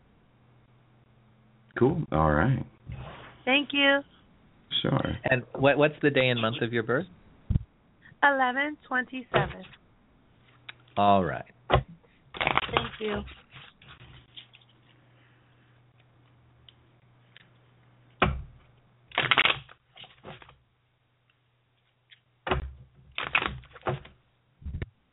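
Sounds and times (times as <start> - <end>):
faint steady hum: 0.0 - 25.1
speech: 1.8 - 4.2, 4.8 - 7.6, 8.2 - 9.8, 11.0 - 11.8, 12.4 - 13.4
tarot cards being shuffled: 12.4 - 15.0.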